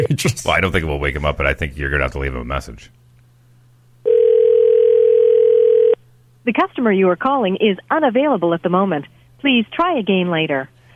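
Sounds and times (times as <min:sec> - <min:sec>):
speech: 0:00.0 - 0:03.0, 0:06.4 - 0:10.7
telephone ringback tone on an outgoing call: 0:04.0 - 0:06.0.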